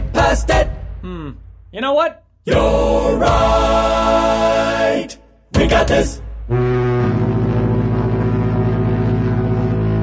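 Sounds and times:
speech: 0.3 - 3.9, 5.0 - 6.7
ship horn blaring aboard a ship: 6.5 - 10.0.

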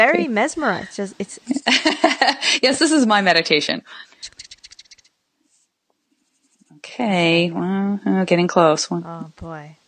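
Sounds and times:
speech: 0.0 - 4.4, 6.9 - 9.8
pen or pencil scratching strokes on paper while drawing: 4.2 - 7.4.

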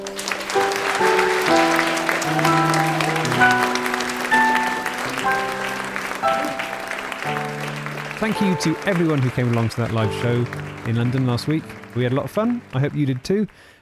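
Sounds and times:
melodic tune: 0.0 - 13.2
live audience applause: 0.0 - 13.7
speech: 8.2 - 13.7.

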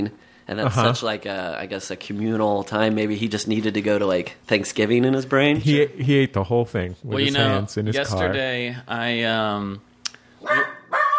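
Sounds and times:
speech: 0.0 - 10.7
dog barking after coming back from a walk: 10.4 - 11.1.

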